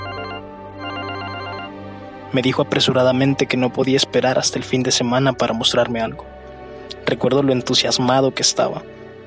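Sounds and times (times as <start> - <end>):
phone ringtone for an incoming video call: 0.0 - 1.8
speech: 2.3 - 6.4, 7.1 - 9.0.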